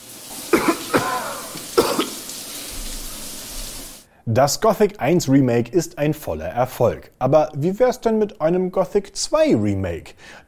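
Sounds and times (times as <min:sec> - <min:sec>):
person coughing harshly: 0:00.5 - 0:02.2
speech: 0:04.3 - 0:10.4.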